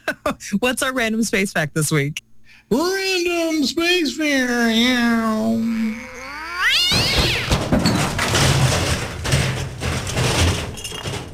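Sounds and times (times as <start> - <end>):
speech: 0.3 - 6.1
cat yowling: 4.8 - 7.6
noisy clattering and crashing: 6.8 - 11.3.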